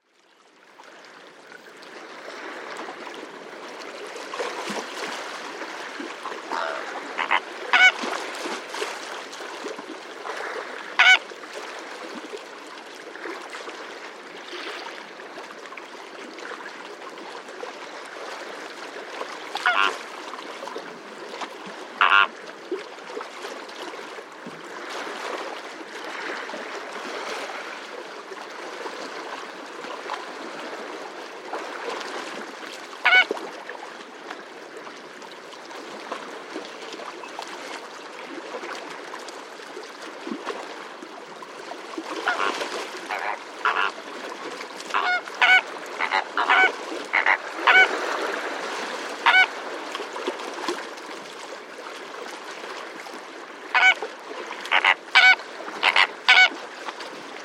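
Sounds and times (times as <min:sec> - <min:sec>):
waves lapping at Etang Vaccares: 0:00.8 - 0:57.4
flamingos calling: 0:06.5 - 0:08.0, 0:11.0 - 0:11.2, 0:19.6 - 0:20.0, 0:22.0 - 0:22.3, 0:33.0 - 0:33.3, 0:42.2 - 0:42.5, 0:43.1 - 0:44.0, 0:44.9 - 0:47.9, 0:49.2 - 0:49.5, 0:53.7 - 0:54.0, 0:54.6 - 0:56.5
frogs croaking: 0:06.5 - 0:08.0, 0:11.0 - 0:11.2, 0:19.6 - 0:20.0, 0:22.0 - 0:22.3, 0:33.0 - 0:33.2, 0:42.2 - 0:42.5, 0:43.1 - 0:44.0, 0:44.9 - 0:47.9, 0:53.7 - 0:54.0, 0:54.6 - 0:56.5
stilts calling: 0:06.5 - 0:08.0, 0:11.0 - 0:11.2, 0:19.6 - 0:20.0, 0:22.0 - 0:22.3, 0:43.1 - 0:43.9, 0:44.9 - 0:47.9, 0:54.7 - 0:56.5.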